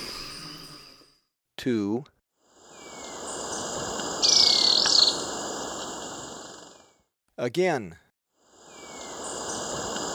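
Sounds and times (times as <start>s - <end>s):
speech: 1.6s - 2.2s, 7.4s - 8.0s
continuous buzzing insect chorus: 2.5s - 6.9s, 8.4s - 10.1s
Ecuadorian tyrannulet high-pitched chattering trill: 4.2s - 5.3s.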